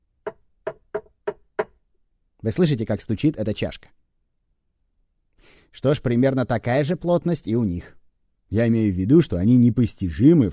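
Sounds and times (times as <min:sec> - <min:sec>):
cup knocking on a hard surface: 0:00.2 - 0:01.8
speech: 0:02.4 - 0:04.0, 0:05.8 - 0:10.5.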